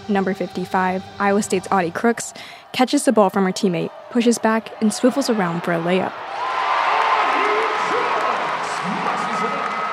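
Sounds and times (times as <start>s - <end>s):
speech: 0.1s - 6.5s
large arena crowd cheering at a basketball game: 1.3s - 9.9s
scattered shouting voices in an arena crowd: 2.1s - 9.9s.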